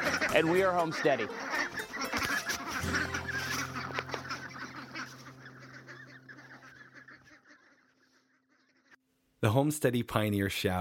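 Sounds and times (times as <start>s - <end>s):
crowd of ducks quacking: 0.0s - 9.0s
speech: 0.4s - 1.4s, 9.4s - 10.7s.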